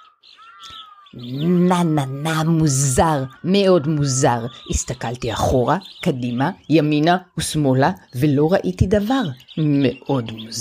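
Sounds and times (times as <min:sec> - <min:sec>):
bird singing a clear whistling phrase: 0:00.0 - 0:10.5
speech: 0:00.6 - 0:10.5
low voice speaking: 0:01.2 - 0:10.5.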